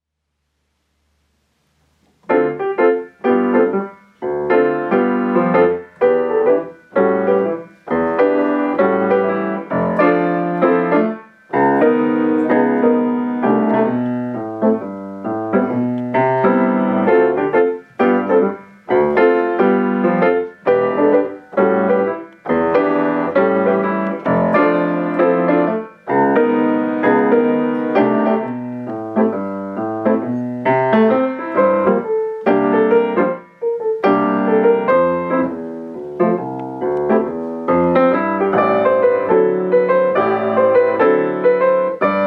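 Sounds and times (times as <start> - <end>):
romantic pianist playing piano in Los Angeles: 2.2 - 42.2.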